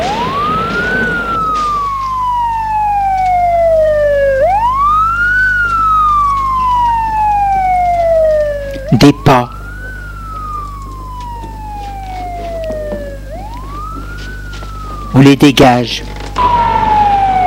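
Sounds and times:
police and fire emergency siren wailing as vehicles respond to an accident: 0:00.0 - 0:17.4
speech: 0:15.2 - 0:16.2.

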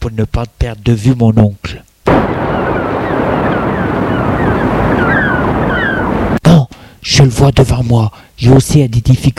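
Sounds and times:
speech: 0:00.0 - 0:02.4, 0:07.0 - 0:09.3
crashing surf: 0:02.1 - 0:06.4
strong gusts of wind roaring: 0:02.1 - 0:06.4.

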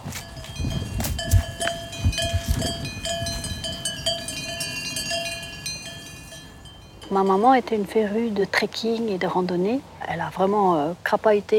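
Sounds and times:
cowbells on cows in a field clanking: 0:00.0 - 0:07.1
speech: 0:07.1 - 0:11.5.

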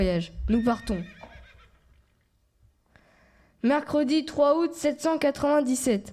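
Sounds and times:
speech: 0:00.0 - 0:01.2, 0:03.6 - 0:06.1
horse whinnying: 0:00.4 - 0:02.3.

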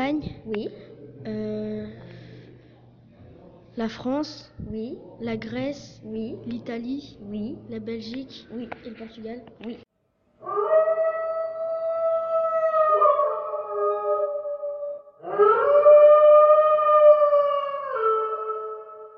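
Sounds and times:
speech: 0:00.1 - 0:02.0, 0:03.8 - 0:10.6
several wolves howling: 0:10.4 - 0:19.1.

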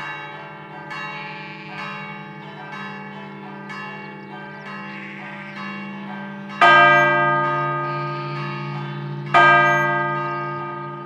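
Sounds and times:
church bell tolling for the dead: 0:00.0 - 0:11.0.

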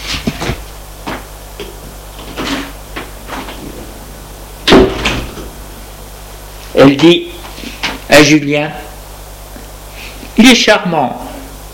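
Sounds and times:
loud thud: 0:04.5 - 0:05.9
door creaking and clunking open: 0:04.6 - 0:05.6
speech: 0:06.8 - 0:07.2, 0:08.2 - 0:08.8, 0:10.4 - 0:11.2.

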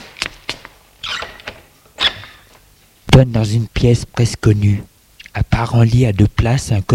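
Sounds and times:
door hinge creaking: 0:01.0 - 0:02.5
speech: 0:03.2 - 0:04.9, 0:05.6 - 0:06.9.

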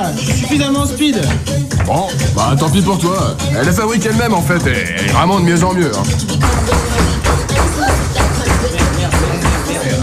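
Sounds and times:
speech: 0:00.0 - 0:07.9
knocking on a door: 0:01.2 - 0:02.3, 0:06.4 - 0:10.0.

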